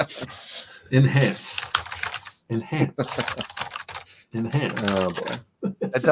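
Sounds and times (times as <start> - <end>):
speech: 0.0 - 1.7, 2.5 - 3.6, 4.3 - 6.1
typing on a cheap Bluetooth keyboard: 1.6 - 2.4, 3.1 - 5.4.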